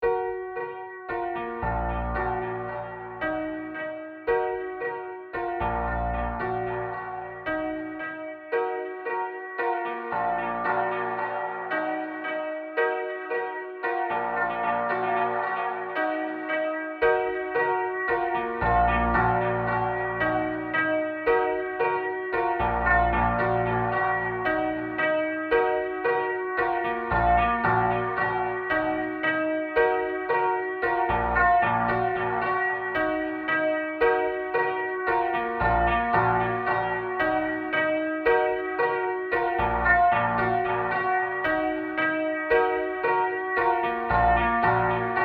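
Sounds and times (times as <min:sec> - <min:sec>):
processed piano: 0:00.0 - 0:45.2.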